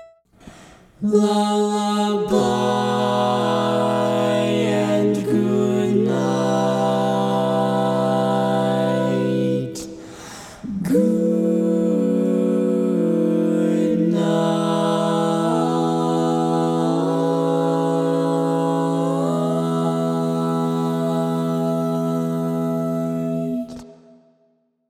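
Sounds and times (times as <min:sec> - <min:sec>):
woman singing lead in barbershop tags: 0:01.0 - 0:24.0.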